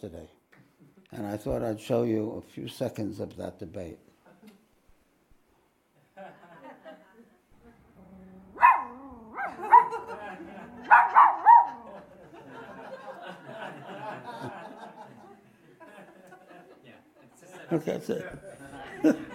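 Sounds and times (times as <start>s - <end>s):
speech: 0.0s - 0.4s, 1.1s - 4.1s, 17.7s - 19.2s
laughter: 6.0s - 7.8s, 9.4s - 19.3s
young dog barking at a statue of the Buddha: 8.6s - 10.2s, 10.8s - 12.0s.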